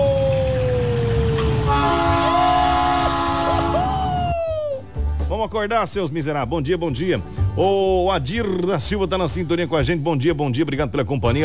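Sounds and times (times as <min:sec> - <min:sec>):
train rumbling past: 0:00.0 - 0:04.4
screeching train wheel tones: 0:00.0 - 0:04.7
long tonal train horn or whistle blasts: 0:01.4 - 0:03.9
speech: 0:05.4 - 0:11.4.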